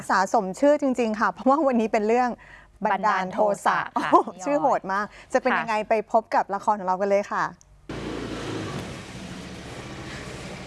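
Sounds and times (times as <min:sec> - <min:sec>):
speech: 0:00.0 - 0:07.6
car engine humming as the vehicle drives: 0:07.9 - 0:10.6.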